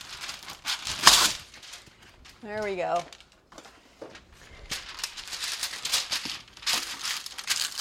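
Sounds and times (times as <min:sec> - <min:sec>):
parchment paper ripping: 0:00.0 - 0:03.3, 0:04.5 - 0:07.7
parchment paper crinkling and rustling: 0:00.0 - 0:07.7
speech: 0:02.4 - 0:03.2.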